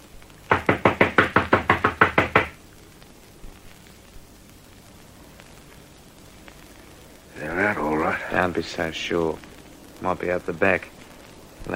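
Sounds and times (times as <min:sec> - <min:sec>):
men knocking on a wooden front door at a veranda: 0:00.5 - 0:02.6
speech: 0:08.6 - 0:11.0.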